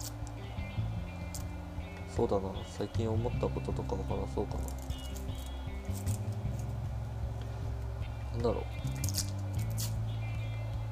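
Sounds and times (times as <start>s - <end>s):
dry papery crackling and rustling of an onion being peeled: 0.0s - 0.4s, 4.6s - 6.8s, 8.8s - 10.0s
steady low hum: 0.0s - 10.9s
speech: 2.2s - 5.0s, 8.4s - 9.3s.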